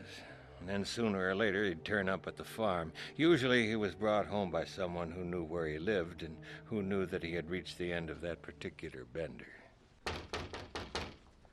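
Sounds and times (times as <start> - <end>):
speech: 0.1 - 9.6
quick dull knocks on a door: 10.0 - 11.3.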